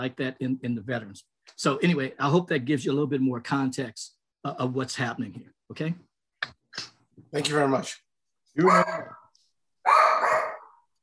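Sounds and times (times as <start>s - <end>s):
speech: 0.0s - 6.6s, 7.3s - 8.0s, 8.6s - 9.2s
dog barking throatily: 9.8s - 10.8s.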